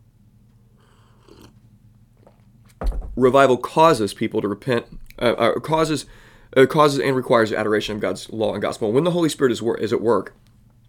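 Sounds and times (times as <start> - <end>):
low hum: 0.0 - 10.8
person slurping coffee: 0.9 - 1.6
speech: 3.2 - 10.4.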